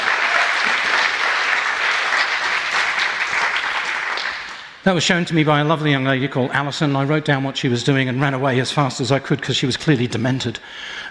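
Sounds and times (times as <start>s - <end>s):
sizable audience applauding: 0.0s - 4.8s
speech: 4.8s - 11.0s.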